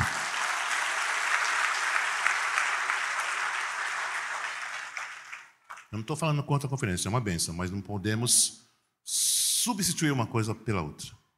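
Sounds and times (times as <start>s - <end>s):
large audience crowd clapping: 0.0s - 6.0s
speech: 5.9s - 11.2s.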